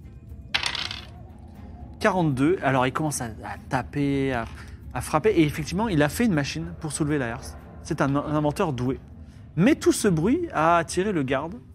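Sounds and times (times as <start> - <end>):
dice rolling across a surface during a tabletop role-playing game: 0.6 - 1.2
speech: 2.0 - 11.7.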